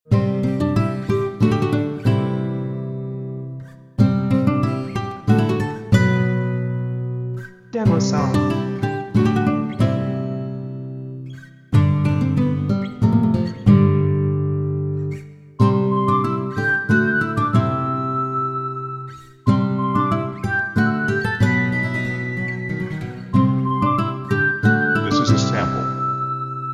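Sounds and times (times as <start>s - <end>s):
guitar loop: 0.1s - 26.7s
flute: 15.2s - 26.7s.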